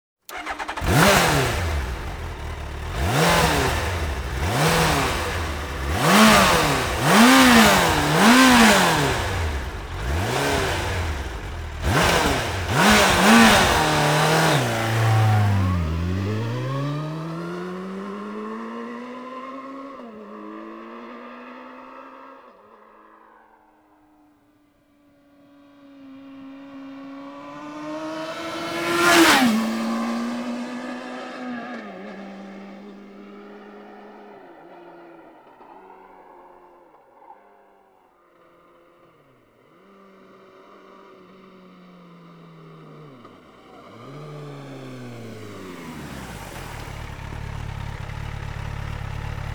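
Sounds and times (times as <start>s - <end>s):
Suzuki GSX 1300 R Hayabusa motorcycle engine: 0.3s - 21.7s, 25.8s - 34.3s, 39.8s - 49.5s.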